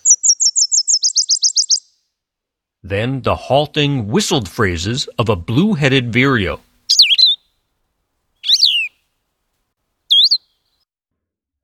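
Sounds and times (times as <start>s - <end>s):
Nashville warbler two-part trill song in a yard in Harwich: 0.0s - 2.0s, 6.9s - 7.4s, 8.4s - 9.0s, 10.1s - 10.7s
speech: 2.8s - 6.7s.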